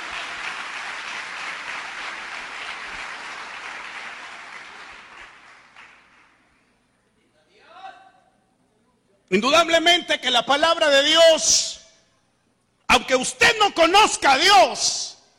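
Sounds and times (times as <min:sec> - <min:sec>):
audience applauding in a large room: 0:00.0 - 0:06.4
speech: 0:09.3 - 0:11.8, 0:13.1 - 0:15.1.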